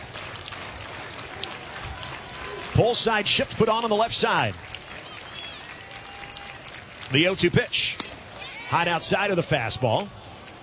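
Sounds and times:
baseball stadium crowd cheering and clapping: 0.0s - 10.6s
speech: 2.8s - 4.6s, 7.1s - 8.0s, 8.7s - 10.2s.

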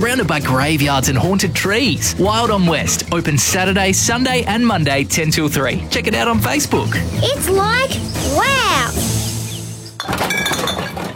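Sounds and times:
speech: 0.0s - 9.0s
empty glass containers clinking as they are gathered for recycling: 10.0s - 11.1s.

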